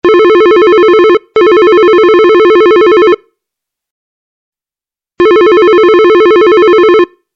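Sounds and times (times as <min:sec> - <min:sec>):
phone ringing: 0:00.0 - 0:03.2, 0:05.2 - 0:07.2.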